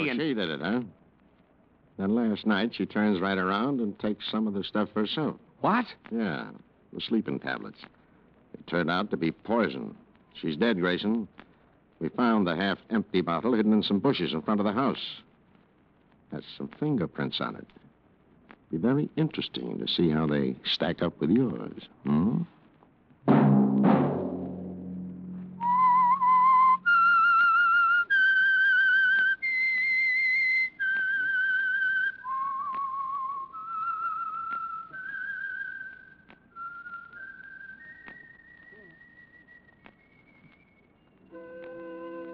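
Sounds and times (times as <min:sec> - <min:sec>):
speech: 0:00.0 - 0:01.0, 0:02.0 - 0:08.0, 0:08.6 - 0:11.4, 0:12.0 - 0:15.2, 0:16.3 - 0:17.8, 0:18.7 - 0:22.5
low orchestral note: 0:23.3 - 0:27.0, 0:41.3 - 0:42.3
loud low musical sting: 0:23.8 - 0:26.9
lone whistler whistling a slow signature theme tune: 0:25.6 - 0:42.3.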